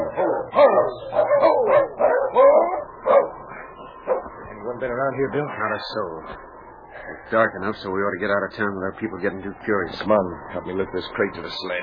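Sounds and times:
dog barking: 0.0 - 4.4
speech: 4.8 - 11.8.

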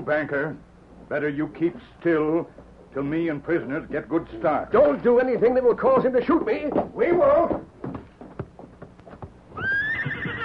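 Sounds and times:
speech: 0.0 - 7.7
horse hooves clopping as riders mount: 4.7 - 10.4
horse stamping: 4.7 - 10.4
horse whinnying: 9.5 - 10.4.

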